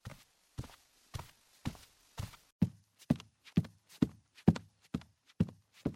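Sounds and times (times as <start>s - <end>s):
footsteps on two different surfaces: 0.0s - 5.9s.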